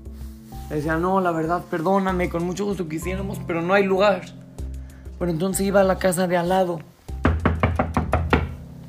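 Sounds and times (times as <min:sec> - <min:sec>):
speech: 0:00.7 - 0:04.4, 0:05.2 - 0:06.9
firm knocking on a door: 0:07.2 - 0:08.6.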